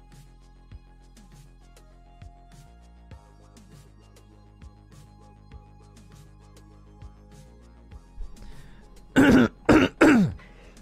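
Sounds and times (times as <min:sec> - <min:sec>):
person clearing throat: 0:09.2 - 0:10.5.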